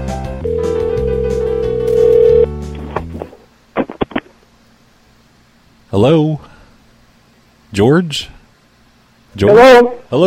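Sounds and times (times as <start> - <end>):
telephone tone: 0.4 - 2.5
speech: 6.0 - 6.5, 7.7 - 8.4, 9.3 - 10.2.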